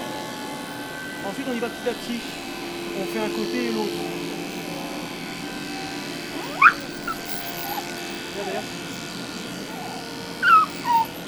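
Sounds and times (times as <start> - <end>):
electric clippers buzzing while trimming fur: 0.0 - 11.2
speech: 1.2 - 4.3
dog whimpering during paw fur trimming: 4.5 - 5.0, 6.3 - 11.2.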